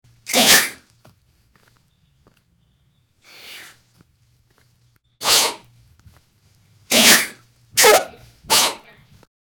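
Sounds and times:
snack being snatched: 0.3s - 0.8s, 6.9s - 8.8s.

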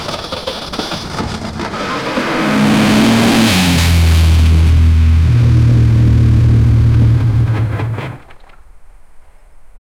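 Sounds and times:
off road pickup truck engine: 1.1s - 8.4s.

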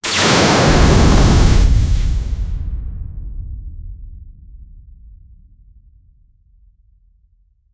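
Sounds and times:
small plasma explosion: 0.0s - 3.0s.

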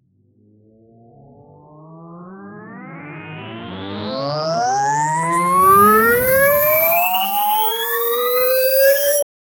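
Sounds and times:
cinematic ascending riser: 3.0s - 9.2s.

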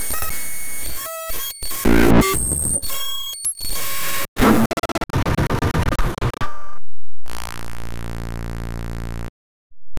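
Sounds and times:
glitch sound: 0.0s - 6.7s.

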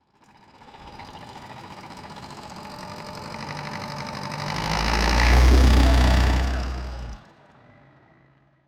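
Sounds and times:
V8 boat engine starting: 2.6s - 7.2s.

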